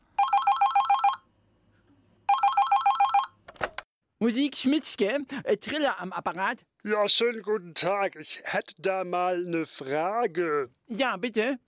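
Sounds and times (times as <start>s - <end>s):
telephone with a classic trilling bell ringing in a music shop: 0.1s - 1.3s, 2.3s - 3.4s
speech: 4.2s - 11.6s.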